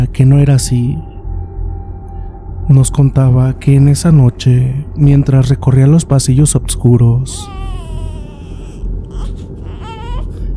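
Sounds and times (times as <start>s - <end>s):
steady low rumble: 0.0s - 10.5s
speech: 0.2s - 1.1s, 2.7s - 7.8s
high piercing shrieks like those of a very small child: 7.4s - 10.5s.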